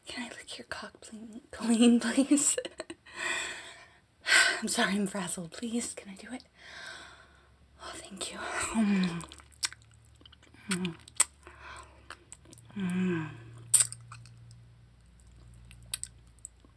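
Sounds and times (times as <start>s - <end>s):
low steady hum: 0.0s - 16.7s
speech: 0.6s - 2.8s, 4.6s - 6.9s, 8.0s - 9.4s, 10.7s - 11.0s, 12.8s - 13.4s
chewing food: 8.8s - 12.8s, 13.4s - 16.7s
person murmuring between bites: 12.7s - 13.6s.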